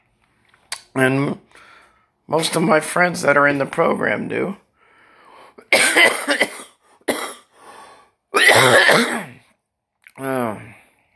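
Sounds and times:
speech: 0:01.0 - 0:01.7, 0:02.3 - 0:04.6, 0:05.6 - 0:06.5
person with a dry allergy cough coughing: 0:05.6 - 0:07.5, 0:08.4 - 0:09.5.

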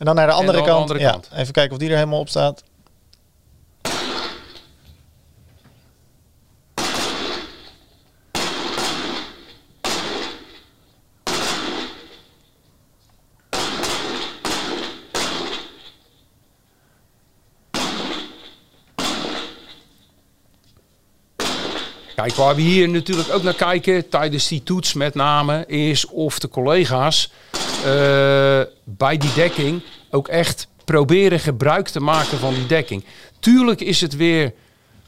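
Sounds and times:
speech: 0:00.0 - 0:02.7, 0:22.2 - 0:34.6
pistol shots fired during a police shooting test: 0:03.8 - 0:04.7, 0:06.8 - 0:10.6, 0:11.2 - 0:12.2, 0:13.5 - 0:15.8, 0:17.7 - 0:19.8, 0:21.4 - 0:23.8.

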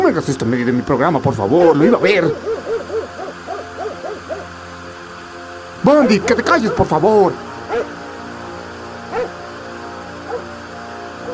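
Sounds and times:
steady hum: 0:00.0 - 0:11.3
speech: 0:00.1 - 0:02.6, 0:05.8 - 0:08.0
dog barking: 0:02.3 - 0:04.5, 0:06.2 - 0:07.0, 0:07.7 - 0:08.0, 0:09.1 - 0:09.4, 0:10.3 - 0:10.5.

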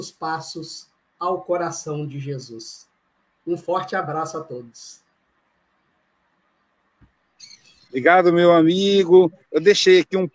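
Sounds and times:
speech: 0:00.0 - 0:05.0, 0:07.4 - 0:10.3
birds chirping outdoors: 0:07.2 - 0:08.2.

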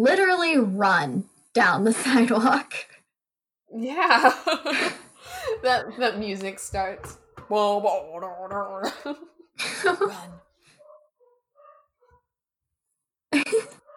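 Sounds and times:
speech: 0:00.0 - 0:02.9, 0:03.7 - 0:10.4, 0:13.4 - 0:13.8
laughter: 0:04.2 - 0:06.0, 0:08.8 - 0:10.4
dogs barking and whining in another room of the house: 0:09.4 - 0:12.4, 0:13.6 - 0:13.9.

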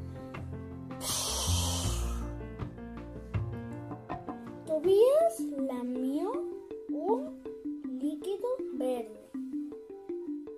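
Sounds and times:
gentle music: 0:00.0 - 0:10.5
loud steamy hiss: 0:01.0 - 0:02.2.

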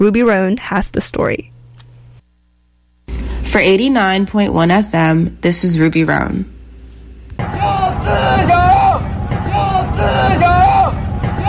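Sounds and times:
speech: 0:00.0 - 0:01.5, 0:03.5 - 0:06.5
crowd of protesters chanting in unison at an outdoor rally in a park: 0:07.4 - 0:11.4.

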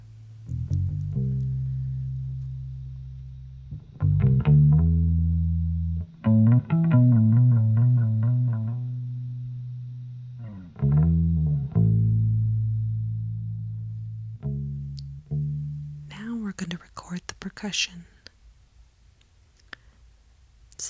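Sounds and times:
bass guitar playing deep sustained notes with a gritty effected tone: 0:00.0 - 0:16.2
speech: 0:17.6 - 0:18.1.

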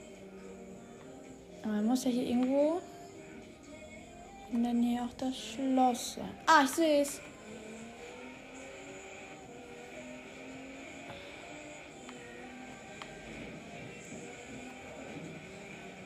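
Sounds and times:
speech: 0:01.6 - 0:03.0, 0:04.5 - 0:07.3
car driving past with engine hum and road rumble: 0:07.1 - 0:16.0.

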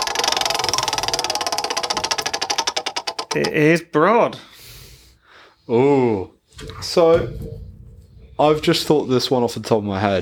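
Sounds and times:
prize wheel spinning with pointer ticking: 0:00.0 - 0:03.7
speech: 0:03.3 - 0:04.5, 0:05.7 - 0:07.7, 0:08.4 - 0:10.2.

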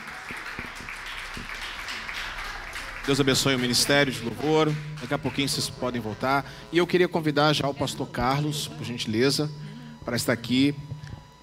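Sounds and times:
church audience applauding: 0:00.0 - 0:07.1
speech: 0:03.1 - 0:10.9.

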